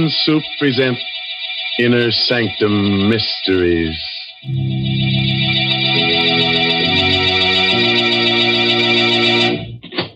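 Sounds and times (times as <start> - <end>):
speech: 0.0 - 1.2, 1.8 - 4.9
dramatic organ-like chords: 4.4 - 9.9.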